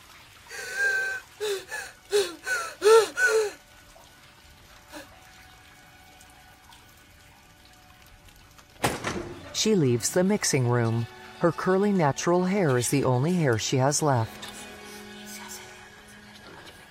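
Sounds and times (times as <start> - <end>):
running water: 0.0 - 16.8
woman on her knees bawling with gasping sobs: 0.5 - 3.6
speech: 9.6 - 14.6.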